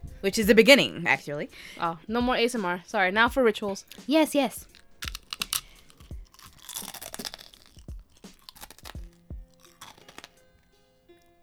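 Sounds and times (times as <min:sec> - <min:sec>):
speech: 0:00.2 - 0:05.1
crunchy cookie being eaten: 0:03.9 - 0:11.3.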